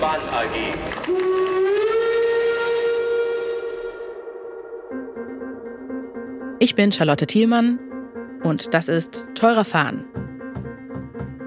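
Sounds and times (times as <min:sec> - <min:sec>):
speech: 0:00.0 - 0:01.5, 0:06.6 - 0:07.8, 0:08.4 - 0:10.2
museum steam locomotive whistle: 0:00.1 - 0:06.5.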